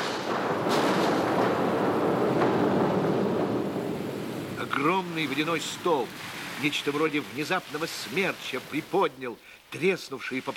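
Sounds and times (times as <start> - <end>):
massive deafening explosion with sustained roar and sharp cracks: 0.0 - 6.7
speech: 4.7 - 10.5.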